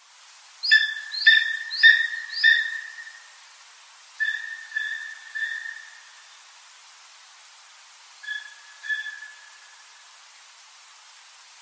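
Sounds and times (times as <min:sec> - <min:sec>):
bird calling with steady whistled notes: 0:00.6 - 0:03.2, 0:04.2 - 0:06.0, 0:08.2 - 0:09.6.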